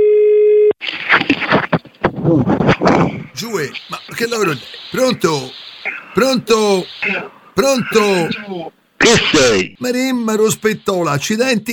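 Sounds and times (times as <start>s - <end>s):
steady electronic telephone line tone: 0.0s - 0.8s
loud crackly noise: 0.8s - 9.4s
indistinct voices: 3.3s - 9.8s
speech: 3.4s - 11.7s.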